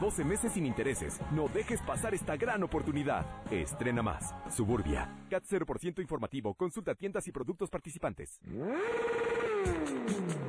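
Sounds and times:
speech: 0.0s - 10.4s
Suzuki motorcycle engine revving: 8.4s - 10.4s.

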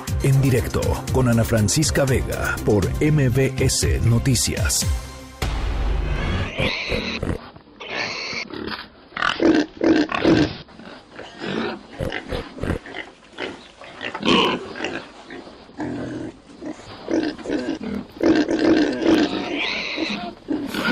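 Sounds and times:
speech: 0.2s - 5.1s
pig grunting, squealing and snorting: 6.1s - 20.9s.

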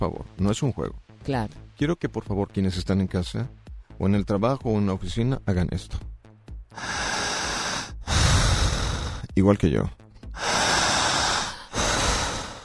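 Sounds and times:
speech: 0.0s - 6.1s, 6.7s - 7.2s, 9.4s - 10.5s
forceful deep inhalations through the nose: 6.7s - 9.3s, 10.2s - 12.6s.

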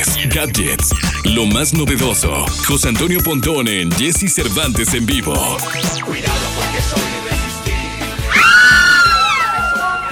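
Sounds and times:
thumping music beat: 0.0s - 8.4s
speech: 0.2s - 7.0s
man about to go on air on a radio program screaming hysterically: 8.3s - 10.0s.

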